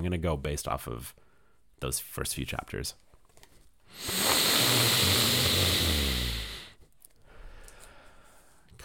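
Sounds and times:
speech: 0.0 - 1.2, 1.8 - 3.0, 3.9 - 5.4
person loudly sniffing a book: 3.9 - 6.8.

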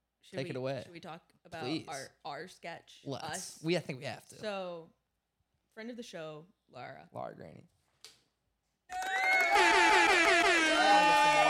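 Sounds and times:
speech: 0.3 - 5.0, 5.8 - 7.8
loud sustained air horn blast: 9.6 - 11.4.

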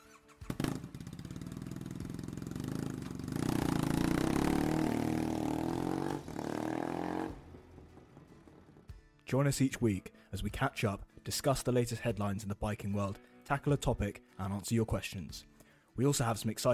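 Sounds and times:
straight-pipe Triumph Bonneville motorcycle engine idling and revving: 0.4 - 8.7
speech: 9.3 - 16.7.

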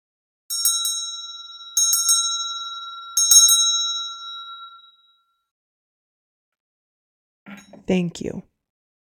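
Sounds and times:
bell ringing with bright metallic strikes: 0.5 - 5.3
speech: 7.5 - 8.5.

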